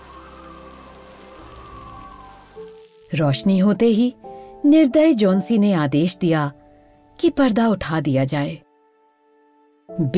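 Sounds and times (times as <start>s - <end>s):
rain pattering against a window: 0.0s - 3.4s
speech: 2.6s - 6.6s, 7.2s - 8.6s, 9.9s - 10.1s.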